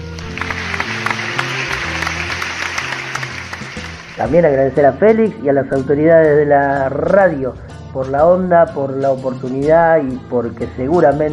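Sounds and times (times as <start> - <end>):
audience applause: 0.0 - 4.4
music with low held notes: 0.0 - 11.3
speech: 4.2 - 11.3.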